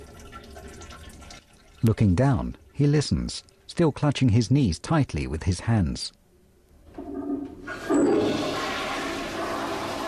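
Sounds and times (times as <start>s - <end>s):
toilet flushing: 0.0s - 1.9s, 6.9s - 10.0s
speech: 1.8s - 6.2s.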